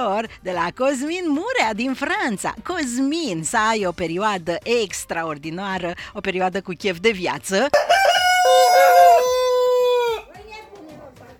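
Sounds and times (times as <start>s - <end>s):
speech: 0.0s - 8.6s
rooster crowing: 7.8s - 10.3s
hens clucking: 7.8s - 10.4s.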